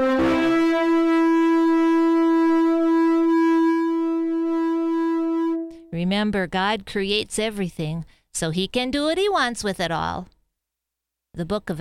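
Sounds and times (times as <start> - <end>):
long loud ram's horn blast: 0.0 - 5.9
speech: 6.1 - 10.3, 11.4 - 11.8.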